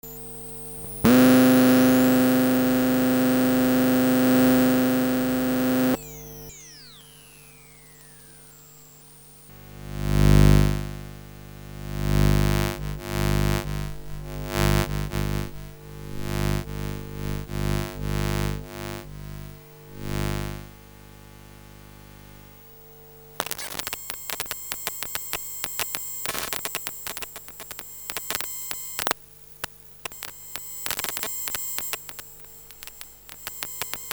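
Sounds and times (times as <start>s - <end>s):
RFID signal from coil pickup: 0.1s - 22.6s, 23.2s - 34.1s.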